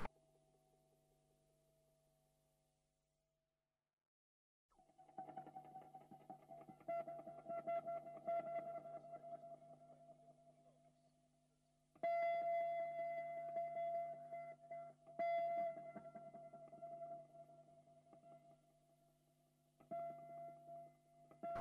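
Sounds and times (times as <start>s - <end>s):
electric guitar notes tapped with heavy echo: 5.0s - 10.8s, 12.0s - 18.6s.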